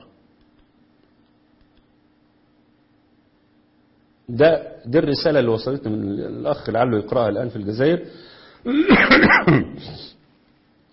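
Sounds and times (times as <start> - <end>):
speech: 4.3 - 10.2
harsh cough with throat clearing: 8.7 - 10.2.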